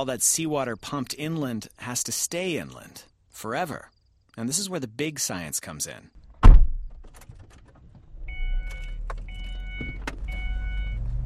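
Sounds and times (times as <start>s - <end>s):
speech: 0.0s - 6.2s
car engine and road rumble driving into the desert: 6.2s - 11.2s.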